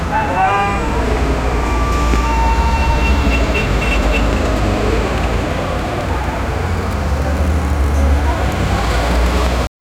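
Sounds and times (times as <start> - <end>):
busy daytime city ambience: 0.0 - 9.7
people chatting: 0.0 - 9.7.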